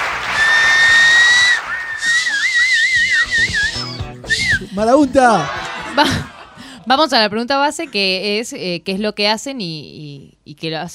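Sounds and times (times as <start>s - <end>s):
audience whistling at a live show: 0.0s - 4.7s
speech: 4.8s - 6.3s, 6.9s - 10.9s
laughter: 5.1s - 7.0s.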